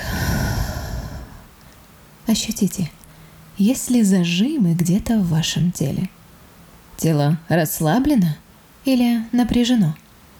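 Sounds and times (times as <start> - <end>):
long deep breathy exhale: 0.0 - 1.5
speech: 2.3 - 3.0, 3.6 - 6.2, 7.0 - 10.0.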